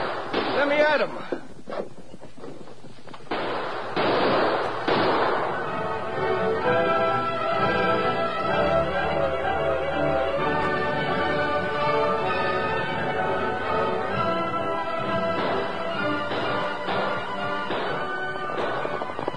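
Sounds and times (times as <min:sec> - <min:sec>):
gunshots in a western shootout: 0:00.0 - 0:01.1, 0:03.3 - 0:06.0, 0:14.9 - 0:19.3
speech: 0:00.6 - 0:01.9
orchestral music: 0:05.1 - 0:19.3.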